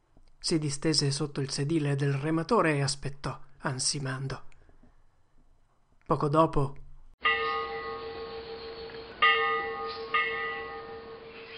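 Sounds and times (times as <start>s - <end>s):
speech: 0.4s - 4.5s, 6.1s - 7.3s
cracked ship's bell tolling on a departing ferry boat: 7.2s - 11.5s.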